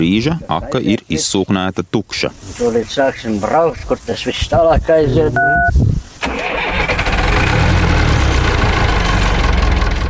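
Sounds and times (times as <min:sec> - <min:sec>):
speech: 0:00.0 - 0:05.9
tractor engine cranking and starting: 0:06.2 - 0:10.0.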